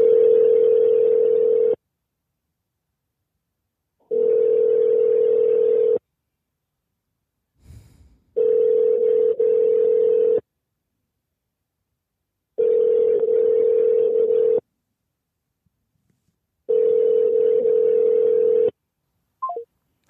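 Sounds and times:
ringing tone of an unanswered call to a sea rescue number: 0.0 - 1.8, 4.1 - 6.0, 8.4 - 10.4, 12.6 - 14.6, 16.7 - 18.7.

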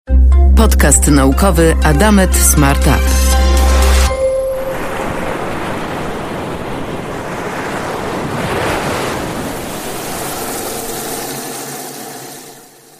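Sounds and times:
brief tone: 0.1 - 5.8
speech: 0.6 - 3.3
steady ocean surf breaking and washing ashore: 1.6 - 12.9
wind noise: 4.1 - 11.7.

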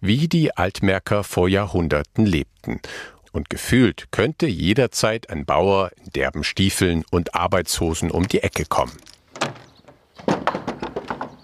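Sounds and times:
speech: 0.0 - 9.6
rattling knocks and clatters: 8.2 - 11.4
door opening with a dull thunk: 9.3 - 11.4.

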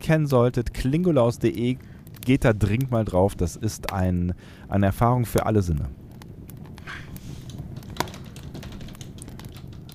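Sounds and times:
speech: 0.1 - 6.0
soft typing on a computer keyboard: 7.5 - 9.9.

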